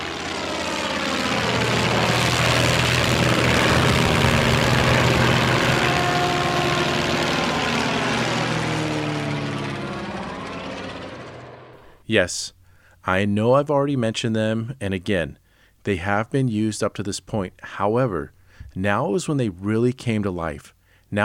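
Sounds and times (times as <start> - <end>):
early propeller aeroplane engine droning: 0.0 - 12.0
speech: 12.1 - 21.2.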